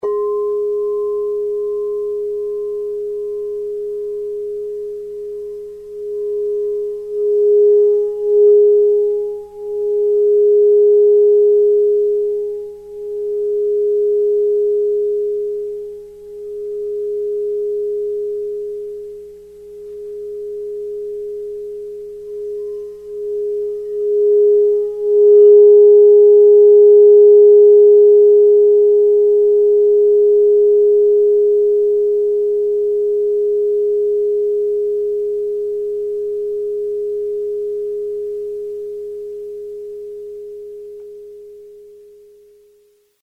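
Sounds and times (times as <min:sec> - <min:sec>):
singing bowls tuned to G ringing: 0:00.0 - 0:42.0.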